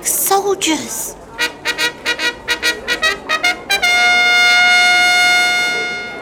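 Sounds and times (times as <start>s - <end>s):
speech: 0.0s - 1.2s
orchestra playing a brassy fanfare: 1.4s - 6.2s.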